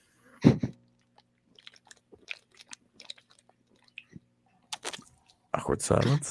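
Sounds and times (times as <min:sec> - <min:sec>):
person gulping a drink: 0:00.8 - 0:05.5
wet mouth clicks: 0:00.9 - 0:05.4
speech: 0:05.7 - 0:06.2.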